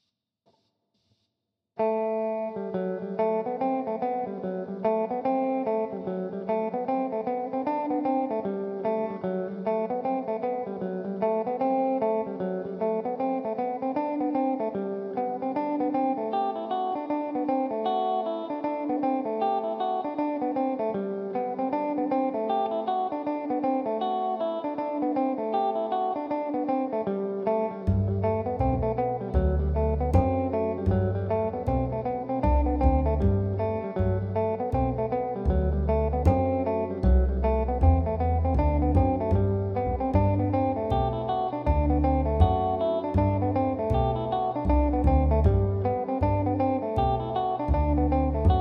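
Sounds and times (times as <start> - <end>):
electric tenor guitar playing a reel in G major: 1.8 - 48.5
synthesised double bass accompaniment: 27.9 - 48.5.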